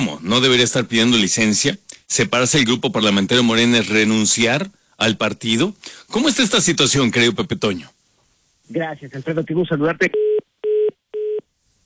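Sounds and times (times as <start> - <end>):
speech: 0.0 - 8.0, 8.7 - 10.2
faint hiss: 0.0 - 10.0, 11.4 - 11.8
telephone line beeps as a call cuts off: 10.2 - 11.4.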